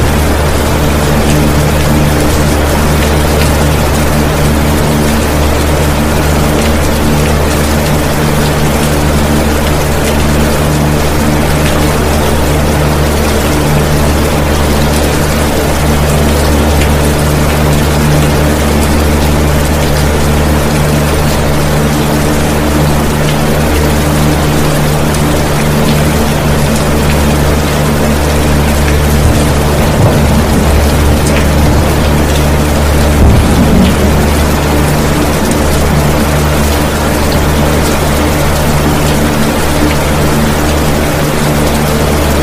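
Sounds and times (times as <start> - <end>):
box fan running on high speed: 0.0 - 42.4
fine rain pattering: 0.0 - 42.4
faint low rumble: 28.2 - 37.0.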